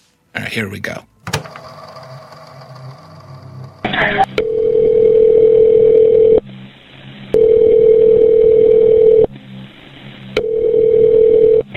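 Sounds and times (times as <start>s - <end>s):
speech: 0.4s - 1.1s
phone ringback tones on a 911 call-back: 4.4s - 6.4s, 7.4s - 9.3s, 10.4s - 11.6s.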